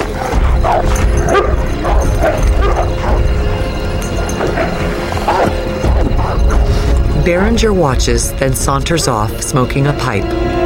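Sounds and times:
dogs barking and yelping: 0.0 - 7.2
speech: 7.2 - 10.5.

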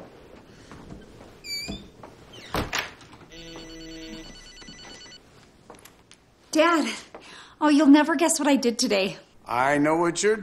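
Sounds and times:
faint noise: 0.0 - 10.4
phone ringing with a bright electronic ringtone: 3.3 - 5.2
speech: 6.6 - 10.4.

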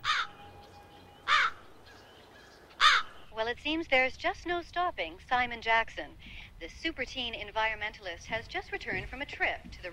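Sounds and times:
crow cawing on a nest: 0.0 - 0.4, 1.2 - 3.2
speech: 3.5 - 9.9.

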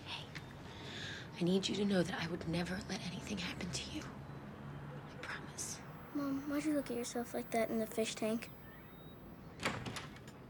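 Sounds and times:
speech: 1.4 - 4.3, 6.2 - 8.6
front door opening with latch clatter and creaks: 5.6 - 10.4.

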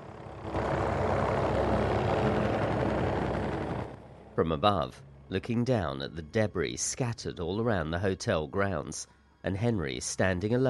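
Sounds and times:
helicopter flying overhead above a beach hotel: 0.0 - 8.0
speech: 4.4 - 10.6.

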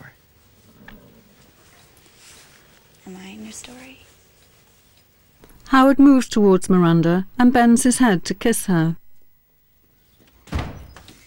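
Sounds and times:
speech: 3.1 - 4.1, 5.7 - 9.0
door opening with a dull heavy thump: 10.4 - 11.2.

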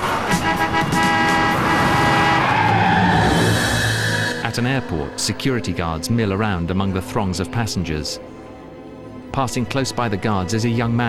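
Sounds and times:
tires of cars in traffic squealing in a skid: 0.0 - 6.4
loud traffic engine and road noise: 0.0 - 9.3
speech: 4.6 - 8.4, 9.4 - 11.0.

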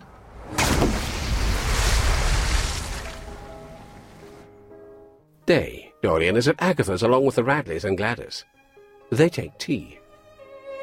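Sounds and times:
trunk weighted with stones splashing into river water: 0.3 - 4.4
speech: 5.5 - 10.0.

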